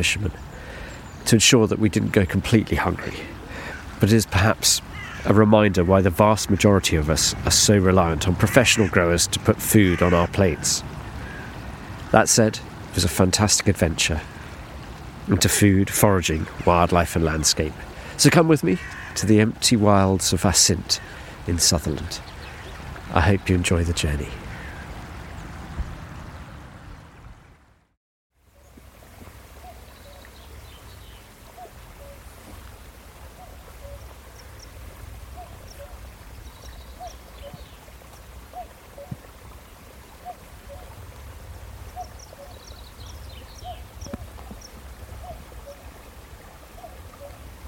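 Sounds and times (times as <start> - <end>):
speech: 0.0 - 3.4, 4.0 - 11.0, 12.1 - 14.4, 15.2 - 22.3, 23.1 - 24.4
flowing water: 0.0 - 47.6
cuckoo calling across a glen: 29.5 - 32.3, 33.4 - 34.7, 35.3 - 39.3, 40.2 - 41.0, 41.9 - 45.9, 46.7 - 47.4.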